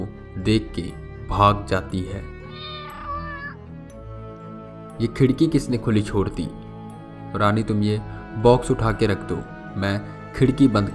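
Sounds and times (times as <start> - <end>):
speech: 0.4 - 2.3, 5.0 - 6.6, 7.3 - 10.9
cat meowing on an open window in a storeroom: 2.4 - 3.7.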